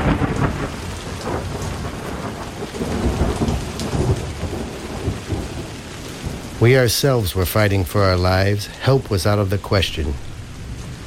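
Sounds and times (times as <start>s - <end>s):
heavy rain in a thunderstorm: 0.0s - 11.0s
thunder rolling in a thunderstorm: 0.0s - 11.0s
speech: 6.6s - 10.3s.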